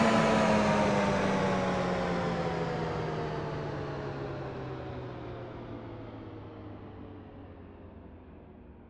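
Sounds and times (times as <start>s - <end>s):
train: 0.0s - 6.7s.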